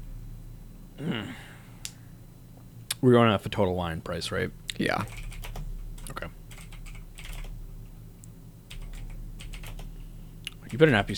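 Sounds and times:
low steady hum: 0.0s - 11.1s
speech: 3.0s - 5.2s, 10.7s - 11.1s
computer keyboard typing by a man: 5.0s - 7.6s, 8.7s - 9.9s.

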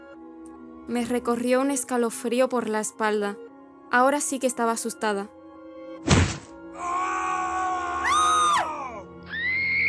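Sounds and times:
speech: 0.9s - 5.4s
heavy thud: 6.0s - 6.6s
person screaming: 6.8s - 9.7s.

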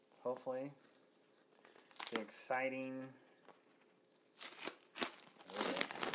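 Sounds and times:
speech: 0.2s - 0.9s, 2.1s - 3.2s
plastic meat packaging being torn open: 1.7s - 2.3s, 4.2s - 6.1s.

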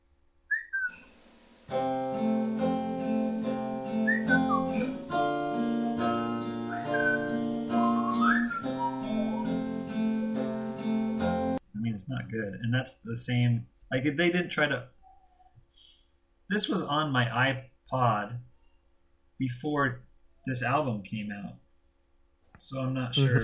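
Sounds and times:
whistled melody in a song: 0.5s - 1.0s, 2.4s - 11.6s
sustained instrumental chords: 1.6s - 11.6s
speech: 12.3s - 15.0s, 16.5s - 18.5s, 19.4s - 21.6s, 22.6s - 23.4s.

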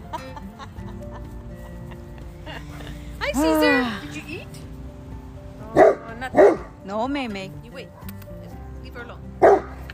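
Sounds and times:
laughter: 0.0s - 3.5s
speech: 2.6s - 3.6s, 6.9s - 8.1s, 9.0s - 9.4s
dog barking: 5.8s - 6.8s, 9.4s - 9.8s.

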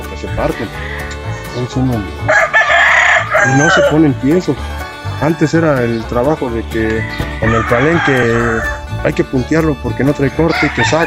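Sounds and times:
speech: 0.2s - 0.9s, 1.6s - 2.4s, 3.4s - 11.0s
rooster crowing: 2.3s - 4.0s, 7.0s - 8.9s, 10.5s - 11.0s.

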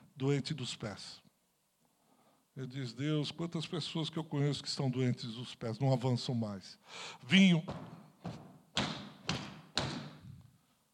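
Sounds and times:
speech: 0.2s - 1.2s, 2.6s - 8.5s
heavy footsteps stomping on a floor: 7.6s - 10.4s.

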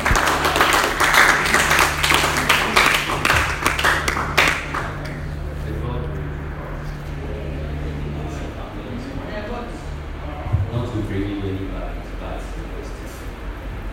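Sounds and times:
audience clapping: 0.0s - 5.5s
low steady hum: 0.0s - 13.9s.

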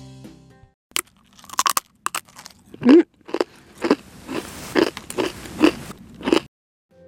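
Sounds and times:
biting and chewing a hard salted edamame rice cracker: 0.9s - 6.5s.

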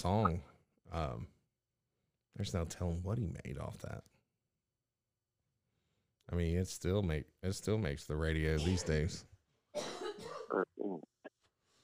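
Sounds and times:
speech: 0.0s - 1.4s, 2.3s - 4.1s, 6.3s - 9.9s, 10.5s - 10.8s
person coughing: 9.8s - 11.0s.

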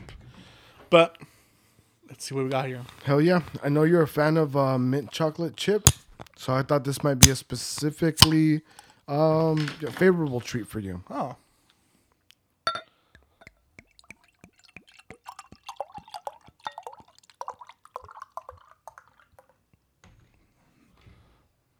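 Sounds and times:
speech: 0.9s - 1.2s, 2.2s - 11.4s
sharp clink of a glass: 12.7s - 13.6s, 16.6s - 17.0s
beer poured into a glass: 13.5s - 19.6s
crackling fizz of beer: 13.8s - 19.5s.

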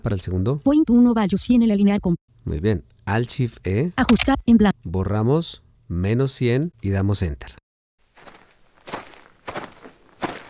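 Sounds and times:
speech: 0.0s - 7.6s
crunching footsteps at a walking pace: 8.0s - 10.4s.

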